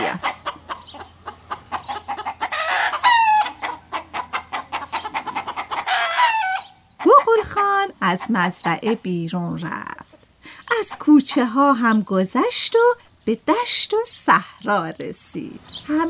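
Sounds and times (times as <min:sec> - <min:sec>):
hens clucking in a farmyard: 0:00.0 - 0:09.1, 0:10.6 - 0:12.0
hens squawking: 0:00.0 - 0:09.1
speech: 0:08.0 - 0:10.0, 0:10.8 - 0:16.0.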